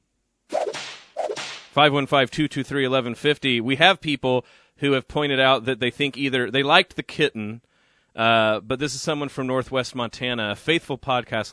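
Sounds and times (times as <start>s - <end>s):
whip cracks used as a sound effect: 0.5s - 1.8s
speech: 1.8s - 11.5s.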